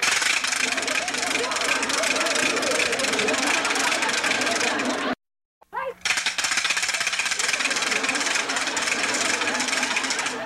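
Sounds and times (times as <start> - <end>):
wooden ratchet rattle noisemaker being spun: 0.0 - 5.1, 6.0 - 10.4
laughter: 0.4 - 5.2, 6.8 - 10.4.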